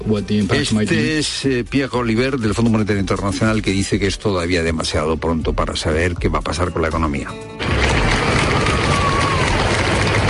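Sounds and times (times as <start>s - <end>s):
speech: 0.0s - 7.6s
large crowd roaring: 7.6s - 10.2s.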